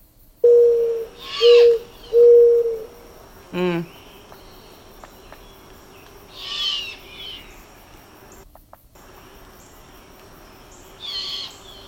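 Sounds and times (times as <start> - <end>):
faint steady hum: 0.0 - 11.8
mourning dove cooing: 0.4 - 8.4, 9.0 - 11.8.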